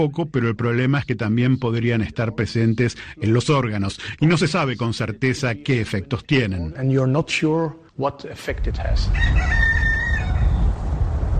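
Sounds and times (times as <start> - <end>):
speech: 0.0 - 9.7
steady low rumble of outdoor noise: 8.5 - 11.3
rooster crowing: 9.1 - 10.9.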